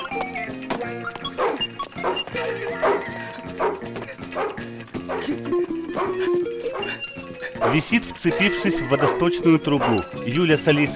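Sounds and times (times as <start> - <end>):
dog barking while chasing a man: 1.4 - 5.4, 6.0 - 7.8, 9.8 - 10.0
speech: 7.6 - 10.9.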